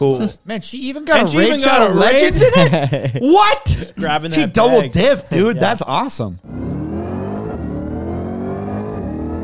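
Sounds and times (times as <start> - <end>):
speech: 0.0 - 6.6
laughter: 1.9 - 6.0
Corvette V8 engine revving hard: 6.4 - 9.4.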